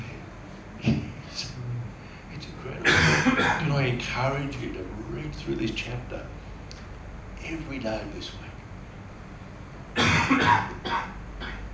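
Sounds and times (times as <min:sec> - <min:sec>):
person coughing: 0:02.8 - 0:03.6, 0:10.0 - 0:11.6
speech: 0:03.2 - 0:06.4, 0:07.4 - 0:08.5, 0:10.3 - 0:11.2.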